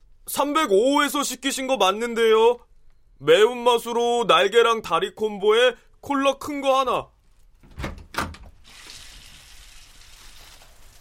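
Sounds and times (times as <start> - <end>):
speech: 0.4 - 7.1
door unlatching and swinging open: 7.6 - 8.6
running water: 8.5 - 10.9.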